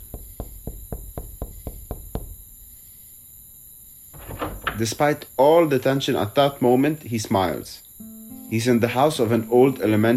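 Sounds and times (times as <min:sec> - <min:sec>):
man knocking desperately on a house door: 0:00.0 - 0:02.5
speech: 0:04.8 - 0:07.8, 0:08.5 - 0:10.1.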